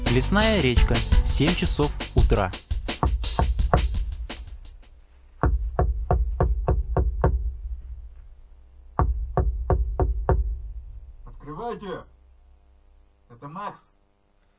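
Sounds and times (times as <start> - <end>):
speech: 0.2 - 2.7, 11.7 - 12.2, 13.4 - 13.9
knocking on a door: 3.0 - 4.1, 5.4 - 7.6, 9.0 - 10.6.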